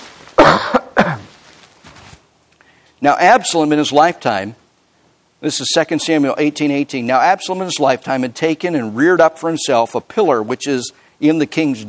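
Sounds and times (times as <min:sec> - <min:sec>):
person coughing: 0:00.4 - 0:01.4
speech: 0:03.0 - 0:04.6, 0:05.4 - 0:11.8.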